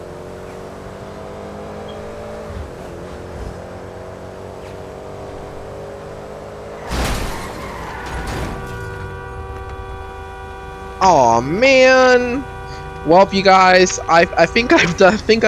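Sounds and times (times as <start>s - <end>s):
video game car engine revving: 0.0s - 15.4s
video game car crash: 6.8s - 9.1s
speech: 11.0s - 15.4s.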